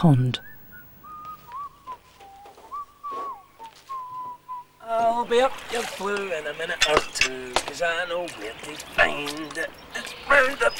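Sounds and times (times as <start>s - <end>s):
speech: 0.0s - 0.6s, 5.0s - 10.7s
man whistling a wandering tune outdoors: 0.4s - 4.8s.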